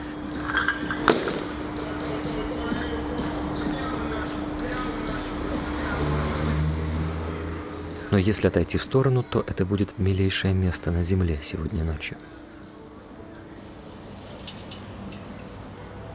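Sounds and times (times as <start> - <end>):
music playing at a skate park: 0.0 - 16.1
glass bottles striking the ground at a skate park: 0.4 - 2.0
murmuring voices: 1.6 - 10.6
speech: 8.1 - 12.4.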